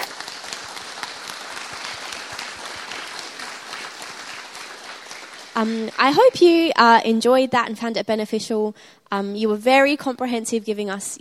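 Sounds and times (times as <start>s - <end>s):
crowd applauding: 0.0s - 6.2s
speech: 5.6s - 11.1s.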